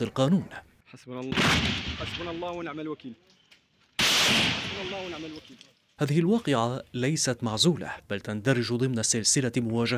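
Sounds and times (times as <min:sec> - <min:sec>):
speech: 0:00.0 - 0:03.4, 0:04.3 - 0:09.9
intermittent gunfire during army sweep operations in Kafriya and al-Fu'ah: 0:01.3 - 0:02.5, 0:04.0 - 0:05.4.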